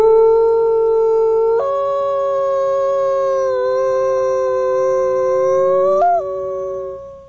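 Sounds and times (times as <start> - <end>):
single gray wolf howling: 0.0 - 7.2.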